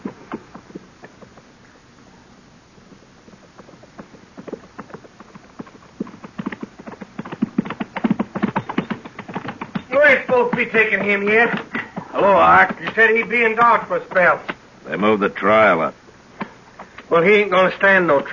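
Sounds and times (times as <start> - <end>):
hoofbeats of a horse and rider approaching in a hurry: 0.0 - 1.6, 2.8 - 14.6
speech: 10.4 - 11.6, 12.2 - 16.0, 17.1 - 18.3.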